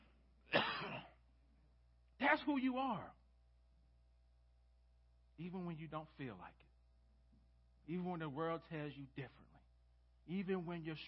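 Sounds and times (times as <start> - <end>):
person coughing: 0.5 - 1.2
speech: 2.3 - 3.2, 5.4 - 6.7, 7.9 - 9.6, 10.3 - 11.0.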